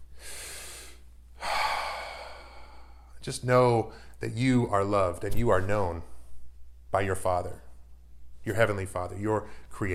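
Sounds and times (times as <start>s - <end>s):
deep breath in and out: 0.0s - 3.2s
speech: 3.2s - 6.1s, 6.9s - 7.6s, 8.4s - 9.9s.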